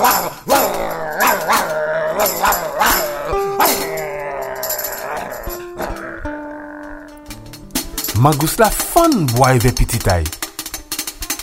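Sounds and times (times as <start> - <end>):
dog growling and barking: 0.0 - 7.4
speech: 8.2 - 10.4.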